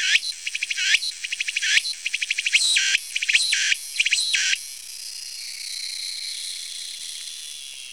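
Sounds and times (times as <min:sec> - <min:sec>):
cicada call of pulsed ticks and buzzy swells: 0:00.0 - 0:04.6.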